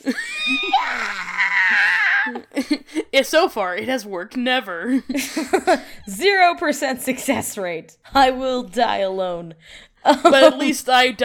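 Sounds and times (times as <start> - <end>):
speech: 0.0 - 0.6, 3.2 - 11.2
person imitating an unholy shriek as a mock mating call: 0.1 - 2.5.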